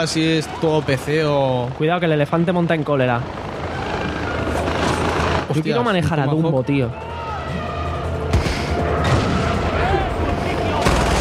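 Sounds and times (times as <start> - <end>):
speech: 0.0 - 3.5, 5.5 - 7.1
dense rumbling video game background: 0.0 - 11.1
booming blasts of a car exploding in a video game: 10.8 - 11.1.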